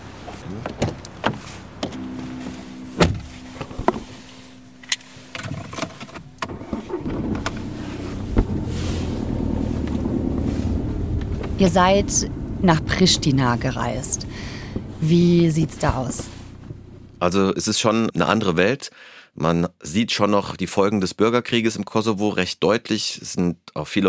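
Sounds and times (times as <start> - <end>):
car engine cranking and starting: 0.0 - 17.3
car doors opening and thudding shut: 0.2 - 11.7
speech: 0.5 - 0.7, 11.6 - 14.2, 15.0 - 16.3, 17.2 - 24.0
car unlocking click and beep: 1.8 - 7.7.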